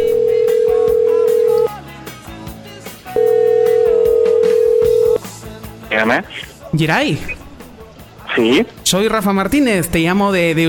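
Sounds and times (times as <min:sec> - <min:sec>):
telephone dial tone before placing a call: 0:00.0 - 0:01.7, 0:03.2 - 0:05.2
speech: 0:06.0 - 0:07.4, 0:08.4 - 0:10.6.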